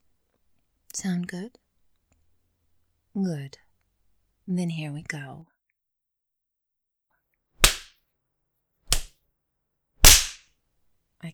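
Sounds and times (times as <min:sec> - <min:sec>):
speech: 0:01.0 - 0:01.6, 0:03.2 - 0:03.6, 0:04.5 - 0:05.5
whip strikes with loud crisp cracks: 0:07.6 - 0:07.9, 0:08.9 - 0:09.1, 0:10.0 - 0:10.4.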